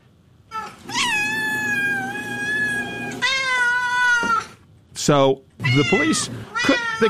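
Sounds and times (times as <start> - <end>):
cats meowing in long wavering yowls: 0.5 - 4.6, 5.6 - 7.0
speech: 5.0 - 7.0.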